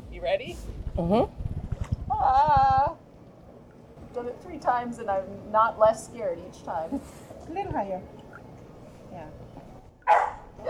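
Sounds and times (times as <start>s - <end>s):
speech: 0.2s - 1.4s, 2.2s - 2.9s, 4.2s - 8.2s, 9.1s - 9.4s
dog barking: 10.0s - 10.6s.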